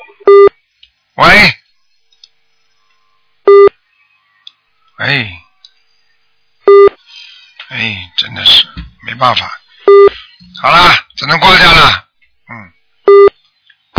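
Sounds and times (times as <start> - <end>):
short electronic telephone tones on a call-in line from a caller dialing a second phone: 0.0 - 0.5, 3.5 - 3.7, 6.7 - 7.0, 9.9 - 10.2, 13.1 - 13.4
speech: 9.2 - 9.6, 10.6 - 12.0.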